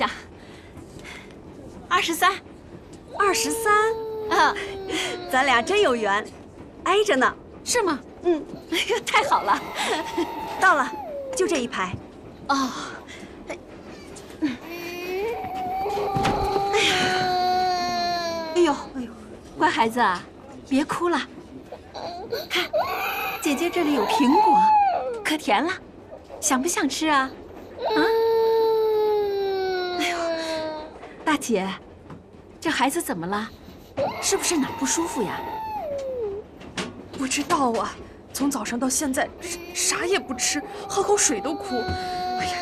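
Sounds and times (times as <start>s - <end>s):
speech: 0.0s - 0.3s, 1.9s - 2.5s, 3.2s - 13.6s, 18.6s - 21.4s, 22.2s - 28.2s, 31.3s - 31.9s, 32.6s - 35.7s, 37.2s - 42.6s
unwell baby crying in long wailing bursts: 3.2s - 5.9s, 9.2s - 11.6s, 14.6s - 18.8s, 22.0s - 25.2s, 27.8s - 30.9s, 34.0s - 36.4s, 39.4s - 42.6s.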